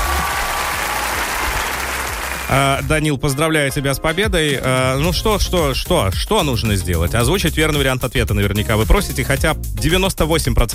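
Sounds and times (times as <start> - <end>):
applause sound effect: 0.0 - 3.4
speech: 2.5 - 10.7.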